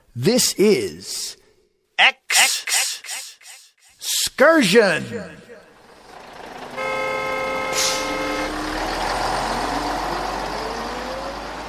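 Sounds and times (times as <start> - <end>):
speech: 0.2 - 1.4, 2.0 - 2.7, 4.4 - 5.5
bus engine rumbling: 5.5 - 11.6
steady horn-like tone: 6.8 - 8.6
bus air brakes hissing: 7.6 - 8.4.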